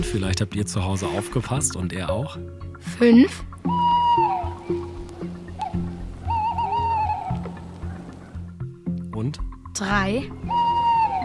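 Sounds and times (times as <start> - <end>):
speech: 0.1 - 3.9, 9.3 - 10.6
small owl giving drawn-out whistling calls: 3.6 - 8.5, 10.3 - 11.2.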